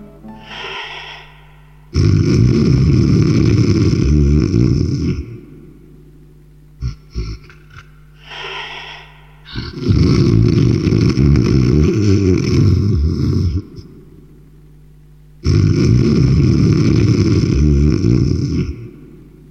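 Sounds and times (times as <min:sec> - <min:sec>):
loud rolling snoring with snorting breaths: 0:01.9 - 0:05.4, 0:08.3 - 0:13.6, 0:15.4 - 0:18.9.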